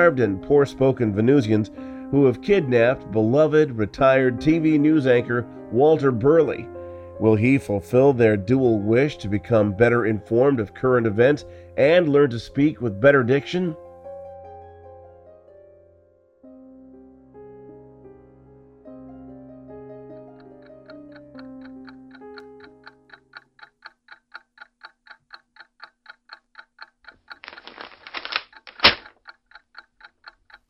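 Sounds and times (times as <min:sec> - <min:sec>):
speech: 0:00.0 - 0:13.8
soft music: 0:00.0 - 0:23.5
clock ticking at an even pace: 0:20.2 - 0:30.6.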